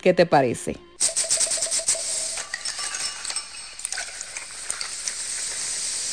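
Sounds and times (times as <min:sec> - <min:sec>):
speech: 0:00.0 - 0:01.1
steady hiss: 0:01.0 - 0:06.1
glasses clinking in a toast: 0:02.1 - 0:05.0.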